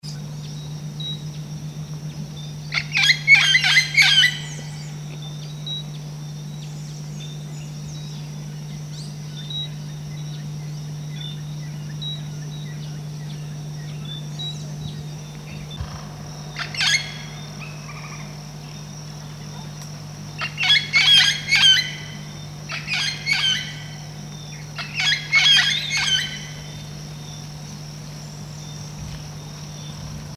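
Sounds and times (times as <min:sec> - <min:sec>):
red-tailed amazon calling: 0:02.7 - 0:04.9, 0:15.2 - 0:18.4, 0:20.4 - 0:26.8.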